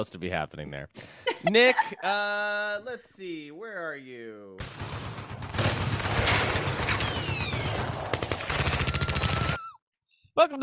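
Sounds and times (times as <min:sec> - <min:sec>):
speech: 0:00.0 - 0:05.2, 0:10.4 - 0:10.6
laughter: 0:01.2 - 0:02.2
rapid gunfire sound effect: 0:04.6 - 0:09.6.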